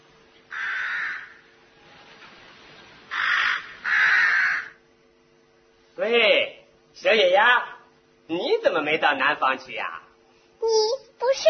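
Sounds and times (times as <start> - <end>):
crow cawing: 0.5 - 1.5, 3.1 - 4.8
speech: 6.0 - 6.4, 7.1 - 7.7, 8.3 - 10.0, 10.6 - 11.4.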